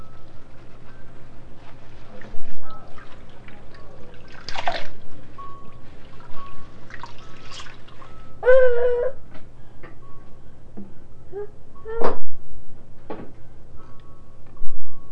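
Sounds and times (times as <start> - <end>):
faint low hum: 0.0 - 15.1
water gurgling and trickling as a bathtub drains: 2.2 - 5.1, 6.9 - 8.0
water dripping: 2.6 - 5.2.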